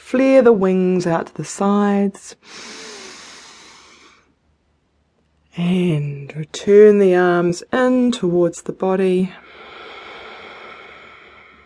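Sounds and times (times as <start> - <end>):
speech: 0.1 - 2.9, 5.6 - 9.6
forceful breathy exhale through the nose during a deep breathing exercise: 2.4 - 4.3, 9.4 - 11.6.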